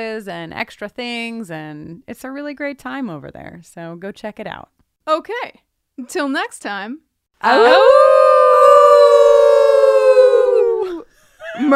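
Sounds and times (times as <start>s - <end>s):
speech: 0.0s - 8.2s, 11.6s - 11.7s
person imitating a wolf howl: 7.4s - 11.0s.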